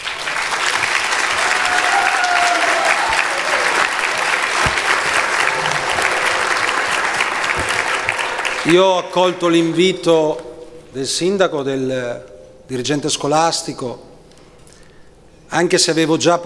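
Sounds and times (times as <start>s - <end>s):
audience applause: 0.0s - 9.1s
speech: 8.7s - 14.1s, 15.5s - 16.4s.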